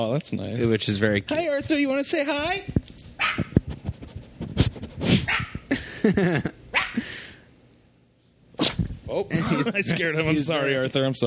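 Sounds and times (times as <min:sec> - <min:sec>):
speech: 0:00.1 - 0:02.8, 0:06.1 - 0:06.6, 0:09.1 - 0:11.2
dog barking and yipping: 0:03.2 - 0:03.5, 0:05.3 - 0:05.6, 0:06.7 - 0:07.0
laughter: 0:05.7 - 0:06.6, 0:09.3 - 0:10.3.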